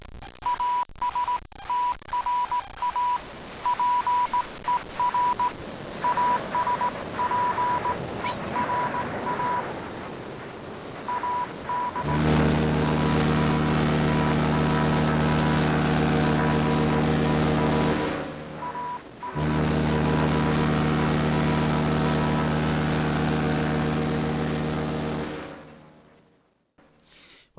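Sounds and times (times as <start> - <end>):
Morse code beeps spelling out an SOS from a ship: 0.5 - 8.0, 8.6 - 9.7, 11.1 - 12.0, 18.6 - 19.4
continuous hiss of radio-like static: 4.4 - 26.0
ship's engine droning with a deep thrumming hum: 5.6 - 27.0.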